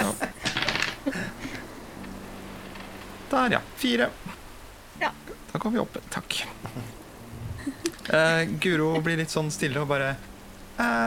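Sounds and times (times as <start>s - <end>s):
laughter: 0.0s - 1.8s, 6.5s - 10.2s
single die clattering and tumbling across a hard surface: 0.4s - 1.1s
speech: 3.3s - 4.4s, 5.0s - 6.8s, 8.1s - 11.0s.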